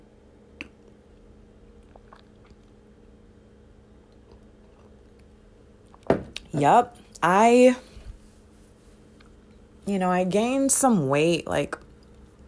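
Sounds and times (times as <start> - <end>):
brief louder slurp of coffee: 1.8 - 2.8
faint wet mouth noises and small clicks: 1.8 - 2.8
person sipping coffee: 1.8 - 2.8
speech: 6.6 - 7.9, 9.9 - 11.8.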